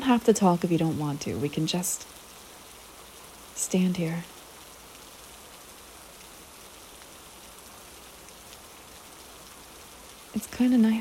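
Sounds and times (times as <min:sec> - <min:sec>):
steady rain pattering on surfaces: 0:00.0 - 0:10.9
speech: 0:00.1 - 0:02.2, 0:03.6 - 0:04.3, 0:10.4 - 0:10.9.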